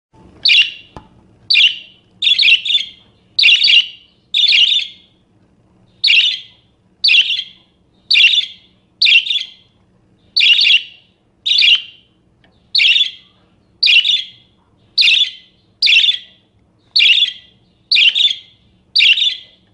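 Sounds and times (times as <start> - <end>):
faint low hum: 0.2 - 19.7
parakeet giving harsh buzzy screeching calls: 0.4 - 0.9, 1.5 - 5.0, 6.0 - 9.6, 10.4 - 12.0, 12.8 - 13.2, 13.8 - 14.4, 15.0 - 16.2, 17.0 - 19.4.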